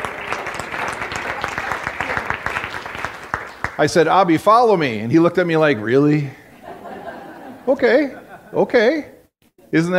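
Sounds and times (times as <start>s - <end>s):
audience applause: 0.0s - 4.0s
speech: 3.8s - 6.4s, 7.7s - 9.1s, 9.7s - 9.9s
laughter: 6.5s - 8.7s.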